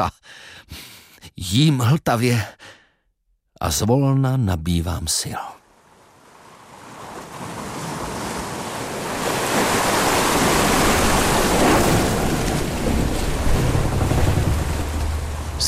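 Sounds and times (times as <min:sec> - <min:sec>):
speech: 0:00.0 - 0:02.8, 0:03.6 - 0:05.6
gusting wind on the open sea: 0:05.6 - 0:15.6
sea waves washing around the deck of a schooner sailing at full speed: 0:05.7 - 0:15.6
low engine-like rumble: 0:13.3 - 0:15.6.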